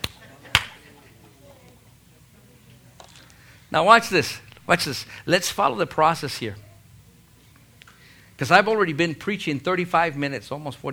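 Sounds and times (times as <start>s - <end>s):
hand slapping: 0.0s - 0.8s
low room murmur of voices: 0.0s - 8.8s
speech: 3.7s - 6.7s, 8.4s - 10.9s.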